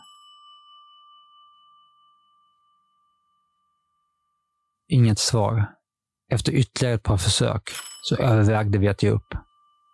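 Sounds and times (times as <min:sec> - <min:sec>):
single bright doorbell chime: 0:00.0 - 0:04.8, 0:07.7 - 0:09.9
speech: 0:04.9 - 0:09.4.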